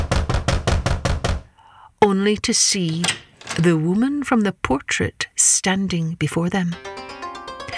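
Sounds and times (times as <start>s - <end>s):
firm knocking on a wooden door: 0.0s - 1.5s
speech: 2.0s - 7.1s.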